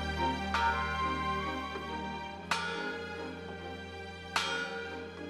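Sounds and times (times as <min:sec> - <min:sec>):
large heavy replica of a historic bell tolling: 0:00.2 - 0:01.8, 0:02.4 - 0:03.4, 0:04.4 - 0:05.0.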